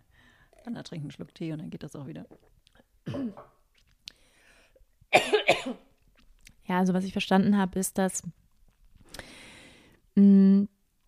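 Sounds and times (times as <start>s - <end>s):
quiet breathing: 0.0s - 0.6s, 4.0s - 4.9s, 9.0s - 10.1s
speech: 0.6s - 3.5s, 6.7s - 8.4s, 10.2s - 10.7s
person coughing: 3.1s - 3.5s, 5.2s - 5.8s.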